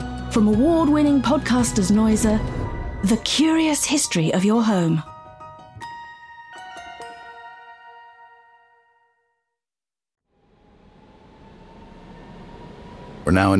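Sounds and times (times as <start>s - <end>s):
speech: 0.4s - 5.1s, 13.3s - 13.5s
three-note chime: 5.1s - 9.4s
train rolling along the rails with a low continuous roar: 10.6s - 13.5s.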